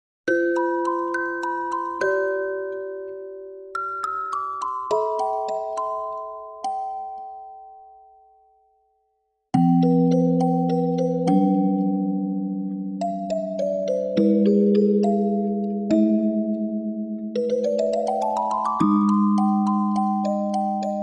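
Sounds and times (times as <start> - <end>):
music box melody: 0.3 - 8.7, 9.6 - 21.0.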